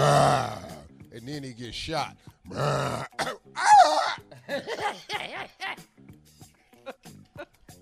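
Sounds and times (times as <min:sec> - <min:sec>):
person vocally imitating an injured mountain lion: 0:00.0 - 0:00.8, 0:02.5 - 0:04.3
speech: 0:01.3 - 0:05.9
laughter: 0:04.4 - 0:05.8.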